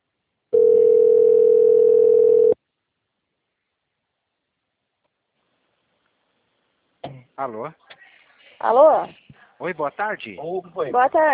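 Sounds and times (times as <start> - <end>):
telephone ringback tone while an outgoing call waits to be answered: 0.6 - 2.6
speech: 7.4 - 8.0, 8.6 - 11.3.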